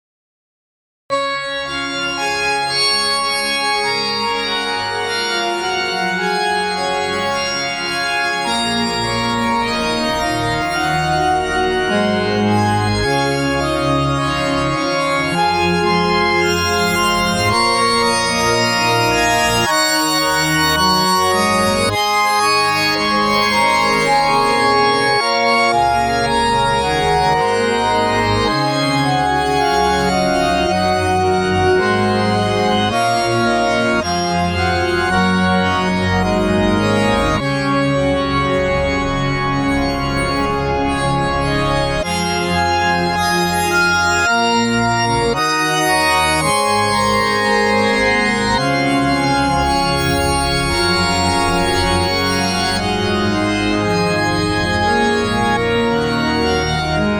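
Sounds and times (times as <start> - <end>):
cathedral church organ: 1.1 - 57.1.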